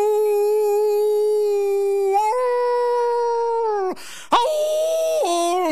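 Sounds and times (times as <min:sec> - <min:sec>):
person imitating a coyote-style howl: 0:00.0 - 0:05.6.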